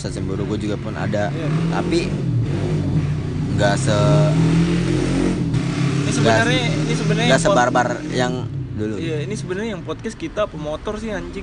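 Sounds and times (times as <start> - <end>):
speech: 0.0 - 5.2, 6.1 - 11.4
motorcycle engine revving: 0.0 - 11.4.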